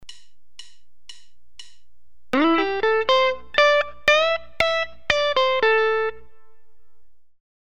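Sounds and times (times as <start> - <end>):
blues guitar lick: 2.4 - 6.8.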